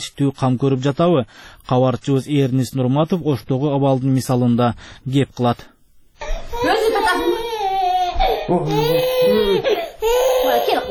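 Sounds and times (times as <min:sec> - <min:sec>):
speech: 0:00.0 - 0:06.8, 0:08.5 - 0:10.9
little girl crying while being comforted in a family home: 0:06.2 - 0:10.9.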